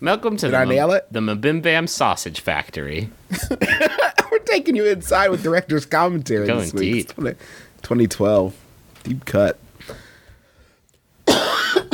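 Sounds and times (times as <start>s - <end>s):
speech: 0.0s - 10.0s
raspy cough from someone with a head cold: 3.5s - 4.4s, 11.2s - 11.9s.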